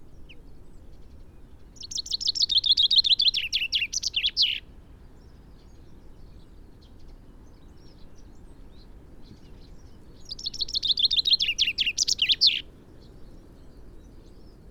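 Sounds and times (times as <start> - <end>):
common chaffinch Fringilla coelebs singing: 1.7 - 4.7, 9.6 - 13.2.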